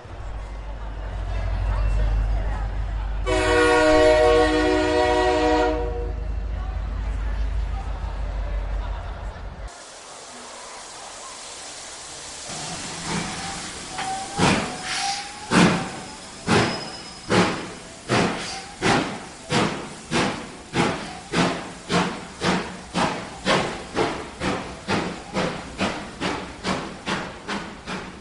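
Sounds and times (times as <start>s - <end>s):
train pulling away from a platform with deep rumble: 0.0s - 28.1s
train whistle blast: 3.3s - 6.2s
steam hissing: 9.7s - 28.1s.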